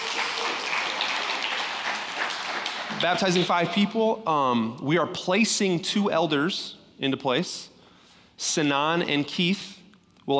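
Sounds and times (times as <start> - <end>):
church congregation applauding: 0.0 - 3.7
speech: 3.0 - 7.7, 8.4 - 10.3.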